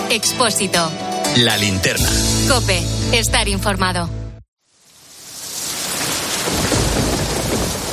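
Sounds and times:
speech: 0.1 - 4.2
heavy rain: 4.6 - 7.9
deep rumbling thunder: 5.8 - 7.9.

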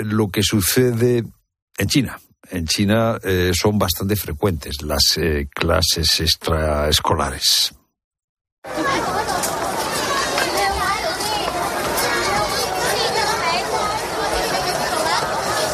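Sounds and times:
speech: 0.0 - 7.8
many children chattering and shouting in a busy school in China: 8.6 - 15.7.

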